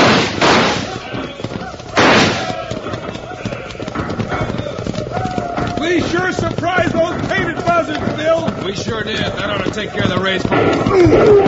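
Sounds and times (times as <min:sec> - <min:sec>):
sharp loud bursts during a rifle fight on horseback: 0:00.0 - 0:03.0
horses galloping with riders in the saddle: 0:00.0 - 0:11.4
speech: 0:08.4 - 0:11.4.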